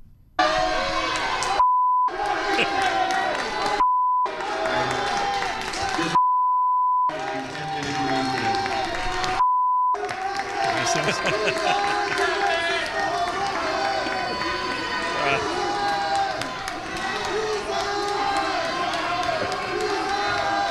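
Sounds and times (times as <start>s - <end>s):
dense protest crowd yelling and chanting in a room: 0.4s - 6.2s, 7.1s - 9.4s, 10.0s - 20.6s
sharp bleep tones: 1.6s - 2.1s, 6.2s - 7.1s, 9.4s - 10.0s
laughter: 2.1s - 3.8s, 5.7s - 6.2s, 10.5s - 15.5s.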